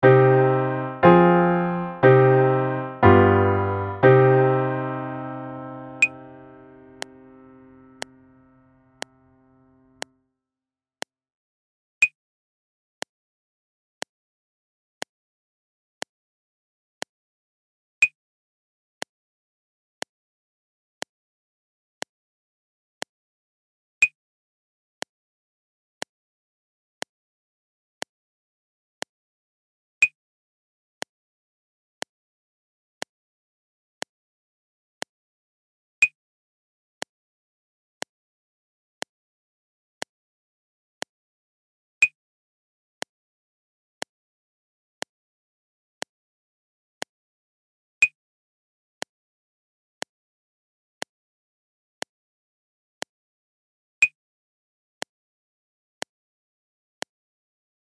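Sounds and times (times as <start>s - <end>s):
music in C minor without piano: 0.0s - 10.0s.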